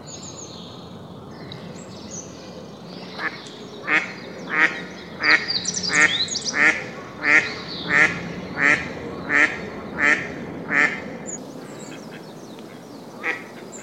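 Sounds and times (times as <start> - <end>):
Eastern spot-billed duck calling with coarse quacks: 3.2 - 11.1, 13.2 - 13.6.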